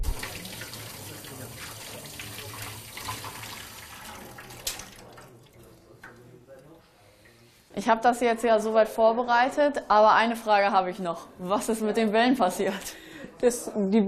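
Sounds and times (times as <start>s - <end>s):
water running from a tap: 0.0s - 6.4s
hands washing under a running tap: 0.0s - 7.5s
speech: 7.8s - 14.0s.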